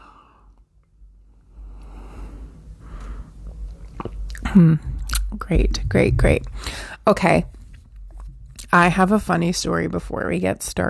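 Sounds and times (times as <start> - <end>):
person sipping and swallowing coffee: 3.4 - 5.4, 7.5 - 8.7
speech: 4.5 - 7.6, 8.7 - 10.8.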